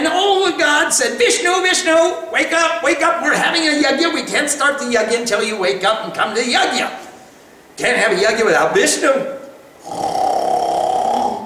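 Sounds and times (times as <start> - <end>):
speech: 0.9 - 7.1, 7.8 - 10.2
human voice imitating loud snoring: 9.8 - 11.4.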